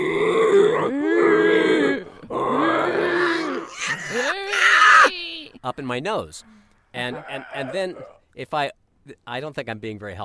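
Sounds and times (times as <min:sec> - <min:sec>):
man's voice imitating a pig grunting: 0:00.0 - 0:05.1, 0:07.0 - 0:08.2
speech: 0:05.7 - 0:10.2.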